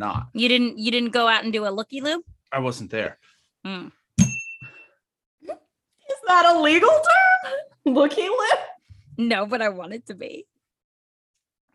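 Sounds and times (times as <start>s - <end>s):
speech: 0.0s - 4.0s, 6.3s - 10.5s
bell ringing with a clear high sustained tone: 4.2s - 4.9s.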